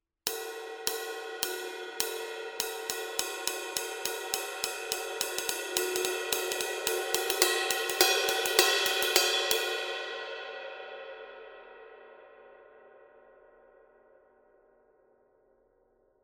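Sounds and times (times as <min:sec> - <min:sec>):
20-inch Paiste Masters dry ride cymbal pattern: 0:00.3 - 0:10.0.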